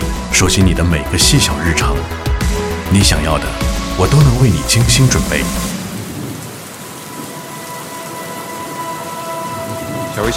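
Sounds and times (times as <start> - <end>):
speech: 0.4 - 2.3, 2.9 - 5.7, 10.2 - 10.3
steady rain pattering on surfaces: 2.8 - 10.3.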